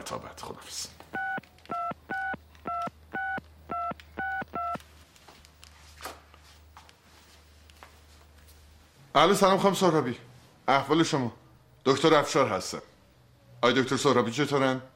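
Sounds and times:
speech: 0:00.0 - 0:01.1, 0:09.2 - 0:12.9, 0:13.6 - 0:14.9
touch-tone beeps of a telephone number being dialed: 0:01.2 - 0:04.8.

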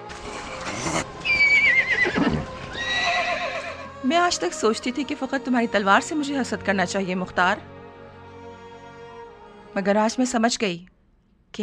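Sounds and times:
horse hooves clopping: 0:00.1 - 0:03.2
horse snorting: 0:00.1 - 0:03.2
horse neighing: 0:00.3 - 0:03.9
speech: 0:04.1 - 0:07.7, 0:09.8 - 0:11.6.

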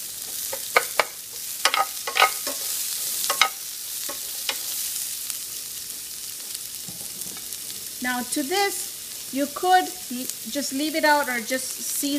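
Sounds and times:
onions frying in a pan: 0:00.0 - 0:12.1
utensil stirring onions in a pan: 0:00.3 - 0:04.8
speech: 0:08.0 - 0:12.1.

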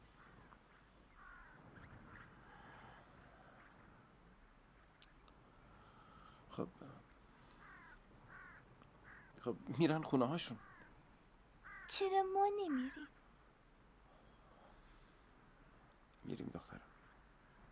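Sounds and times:
flock of crows cawing: 0:00.0 - 0:03.9, 0:07.4 - 0:09.5, 0:10.4 - 0:12.0
speech: 0:06.6 - 0:07.0, 0:09.4 - 0:10.7, 0:12.0 - 0:13.2.

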